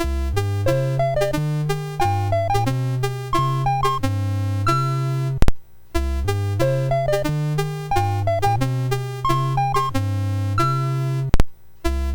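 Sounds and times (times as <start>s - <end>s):
MOS6581R3 chiptune game music: 0.0s - 5.2s, 6.2s - 11.2s.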